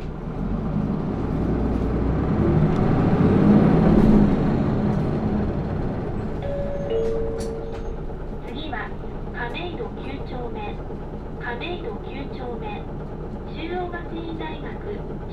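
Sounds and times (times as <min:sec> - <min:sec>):
bus engine rumbling as it pulls away from a stop: 0:00.0 - 0:15.3.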